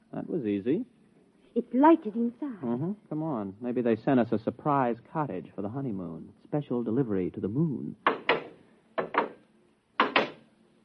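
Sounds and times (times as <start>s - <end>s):
speech: 0.2s - 1.0s, 1.6s - 8.1s
door thudding shut: 10.0s - 10.4s.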